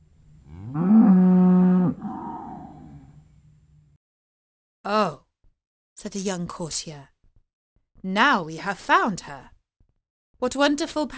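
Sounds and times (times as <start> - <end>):
single cow mooing: 0.5 - 3.2
speech: 6.0 - 7.1, 8.0 - 9.5, 10.4 - 11.1.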